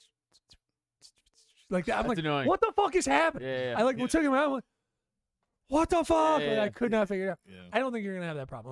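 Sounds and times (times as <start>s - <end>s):
pencil scratching on paper: 0.0s - 2.2s
speech: 1.7s - 4.7s, 5.7s - 8.7s.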